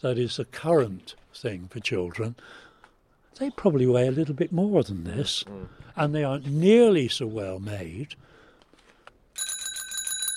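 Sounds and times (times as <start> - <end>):
speech: 0.0 - 2.7, 3.4 - 8.3
revolving bicycle bell ringing: 9.4 - 10.3.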